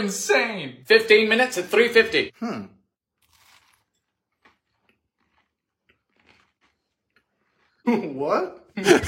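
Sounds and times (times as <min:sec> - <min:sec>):
speech: 0:00.0 - 0:02.8, 0:07.9 - 0:09.0
person biting into and chewing a crunchy potato chip cookie: 0:03.1 - 0:07.8.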